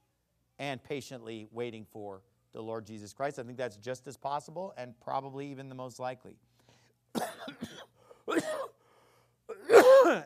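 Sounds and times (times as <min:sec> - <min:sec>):
speech: 0:00.6 - 0:06.5
harsh coughing fits: 0:07.1 - 0:08.8, 0:09.5 - 0:10.2.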